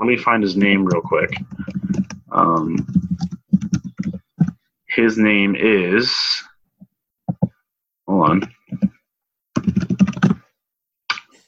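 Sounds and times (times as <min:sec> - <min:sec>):
speech: 0:00.0 - 0:03.3, 0:05.0 - 0:06.5, 0:08.2 - 0:08.6
clattering computer keyboard typing: 0:00.7 - 0:04.6, 0:08.4 - 0:08.9, 0:09.6 - 0:10.4.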